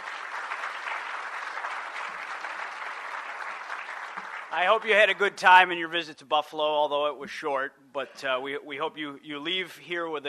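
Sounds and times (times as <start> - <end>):
audience applause: 0.0 - 5.3
speech: 4.5 - 10.2.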